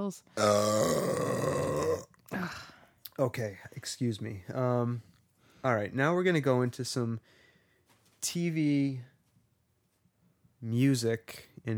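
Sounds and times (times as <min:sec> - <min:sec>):
speech: 0:00.0 - 0:01.6, 0:02.3 - 0:07.4, 0:08.2 - 0:09.1, 0:10.6 - 0:11.7
long loud burp: 0:00.4 - 0:02.2.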